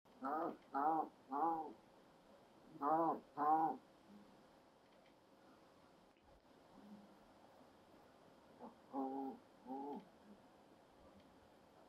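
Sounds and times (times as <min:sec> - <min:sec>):
Pallas's cat vocalizing: 0:00.1 - 0:01.8, 0:02.7 - 0:03.8, 0:08.6 - 0:10.1.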